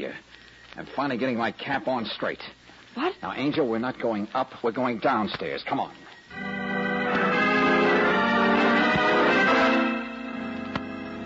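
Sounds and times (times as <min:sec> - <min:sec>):
speech: 0:00.0 - 0:06.5
bell ringing: 0:06.3 - 0:11.2.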